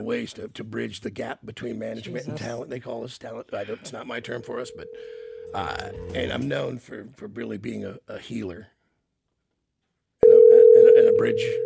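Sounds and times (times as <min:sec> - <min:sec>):
speech: 0:00.0 - 0:08.8, 0:11.2 - 0:11.6
telephone ringing with a steady electronic tone: 0:04.2 - 0:06.4, 0:10.2 - 0:11.6.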